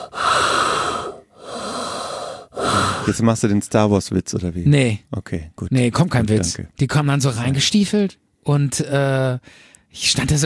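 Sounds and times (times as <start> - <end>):
voice imitating heavy breathing through gas masks: 0.0 - 3.3
speech: 3.1 - 10.4.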